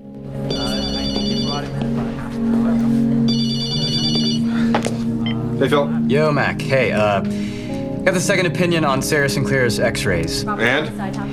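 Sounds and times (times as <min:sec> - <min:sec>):
mobile phone ringing at a police station: 0:00.5 - 0:02.0, 0:03.2 - 0:05.5
speech: 0:05.6 - 0:11.3.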